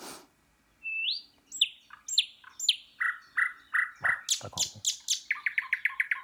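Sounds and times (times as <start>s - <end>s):
nightingale singing: 0.8s - 6.2s.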